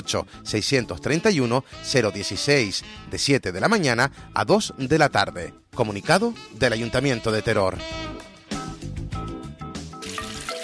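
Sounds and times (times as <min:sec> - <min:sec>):
speech: 0:00.1 - 0:08.2
water gushing from a running tap: 0:10.0 - 0:10.6.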